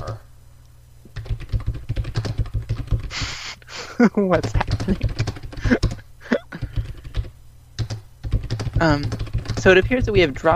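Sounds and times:
low hum: 0:00.0 - 0:10.5
typing on a computer keyboard: 0:01.1 - 0:03.2, 0:04.4 - 0:10.5
burst of hiss: 0:03.1 - 0:03.6
speech: 0:04.0 - 0:05.9, 0:08.8 - 0:10.5.

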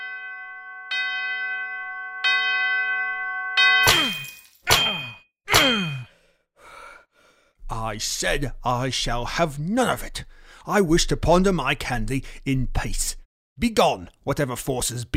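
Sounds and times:
old disused bell ringing: 0:00.0 - 0:06.0
speech: 0:07.8 - 0:15.1.

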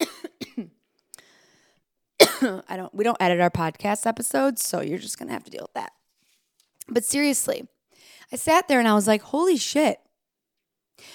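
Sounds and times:
person coughing: 0:00.0 - 0:00.8, 0:02.2 - 0:02.6
speech: 0:00.6 - 0:00.8, 0:02.4 - 0:06.0, 0:06.9 - 0:10.0
raspy wheezy breath: 0:01.2 - 0:01.8.

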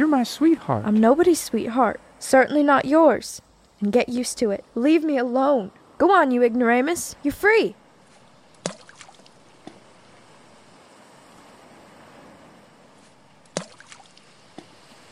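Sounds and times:
speech: 0:00.1 - 0:07.8
water lapping against a tied-up wooden rowboat: 0:07.8 - 0:15.1.

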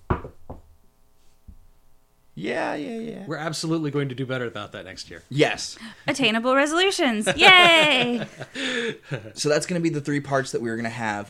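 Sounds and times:
knocks on a wooden surface: 0:00.1 - 0:00.7
speech: 0:02.4 - 0:11.2
laughter: 0:07.2 - 0:09.5.

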